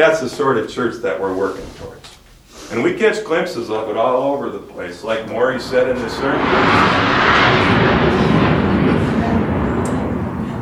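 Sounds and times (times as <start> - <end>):
speech: 0.0 - 2.1, 2.7 - 8.2
jet aircraft flying overhead: 5.1 - 10.6.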